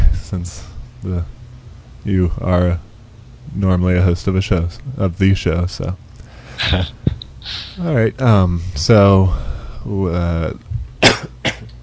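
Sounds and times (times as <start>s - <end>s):
speech: 0.3s - 1.4s, 2.0s - 2.9s, 3.5s - 6.0s, 6.6s - 10.7s
person coughing: 11.0s - 11.7s
person clearing throat with rasping grunts: 11.0s - 11.8s.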